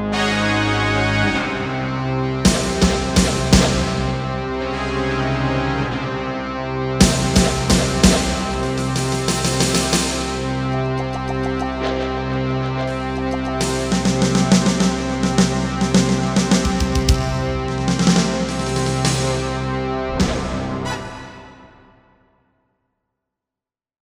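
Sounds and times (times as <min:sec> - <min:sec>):
brass drum on Korg MSC-1S: 0:00.1 - 0:06.3, 0:07.0 - 0:22.1.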